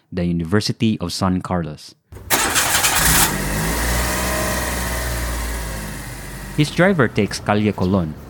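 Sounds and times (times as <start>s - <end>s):
speech: 0.1s - 2.0s, 6.6s - 8.2s
car engine cranking and starting: 2.2s - 7.4s.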